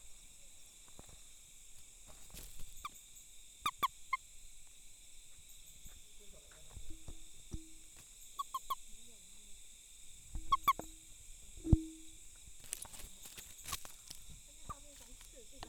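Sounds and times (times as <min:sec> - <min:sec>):
frogs clicking in the evening: 0:02.4 - 0:09.1, 0:10.2 - 0:15.6.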